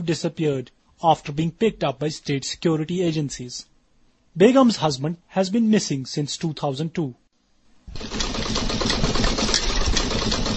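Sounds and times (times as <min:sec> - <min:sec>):
speech: 0:00.0 - 0:03.7, 0:04.4 - 0:07.2
sewing machine stitching clothes: 0:07.9 - 0:10.5.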